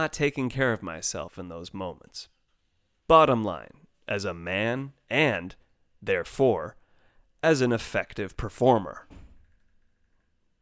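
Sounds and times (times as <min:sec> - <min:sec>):
speech: 0:00.0 - 0:02.4, 0:03.1 - 0:06.8, 0:07.4 - 0:09.2
door slam in a house: 0:09.1 - 0:09.6.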